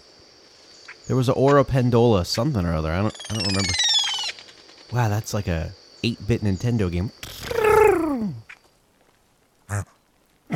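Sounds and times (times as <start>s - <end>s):
speech: 1.1s - 3.8s, 4.9s - 7.6s, 9.7s - 9.9s
dusky grouse gruff grunt: 7.2s - 8.6s, 9.7s - 10.5s.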